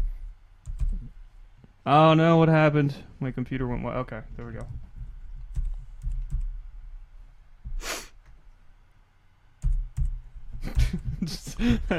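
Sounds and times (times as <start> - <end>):
computer keyboard typing a number: 0.6 - 1.1, 5.4 - 6.6, 9.6 - 10.2
speech: 1.8 - 4.8, 11.3 - 11.9.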